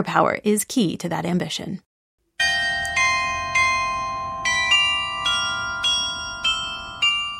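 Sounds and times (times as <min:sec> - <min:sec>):
speech: 0:00.0 - 0:01.9
town hall glockenspiel chiming on the main town square in Abensburg Bavaria Germany: 0:02.4 - 0:07.3.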